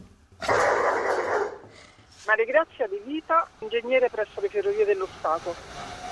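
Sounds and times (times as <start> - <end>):
dogs barking and snarling: 0.4 - 1.7
speech: 2.4 - 5.8.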